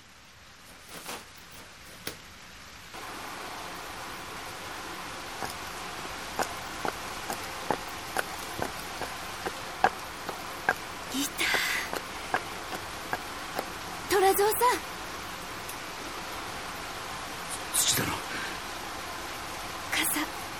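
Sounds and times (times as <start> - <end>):
steady rain: 0.0 - 20.5
rustling: 0.5 - 13.7
sharp drips and taps: 5.4 - 13.8
speech: 14.6 - 15.0.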